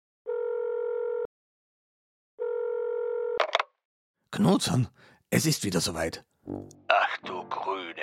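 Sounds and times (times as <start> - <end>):
steady buzzing phone ringback tone: 0.3 - 1.3, 2.4 - 3.5
speech: 4.3 - 8.0.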